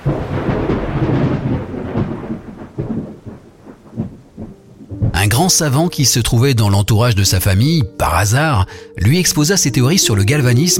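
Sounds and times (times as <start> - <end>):
heavy rain: 0.0 - 5.9
thunder rumbling: 0.0 - 6.0
speech: 5.4 - 10.7.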